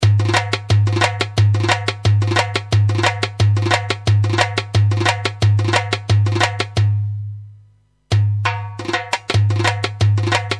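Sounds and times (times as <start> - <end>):
darbuka drumming on a synthesizer: 0.0 - 7.2, 8.1 - 10.5.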